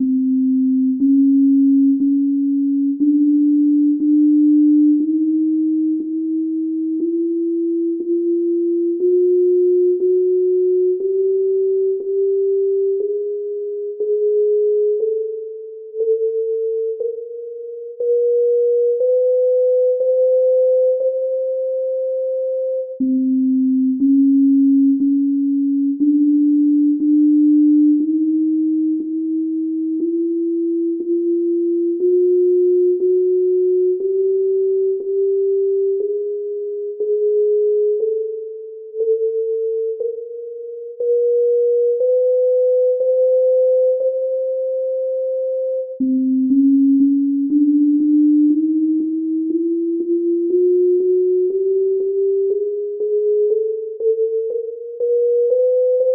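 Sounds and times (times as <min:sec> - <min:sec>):
41-EDO Miracle scale and triads in sine waves: 0:00.0 - 0:56.1.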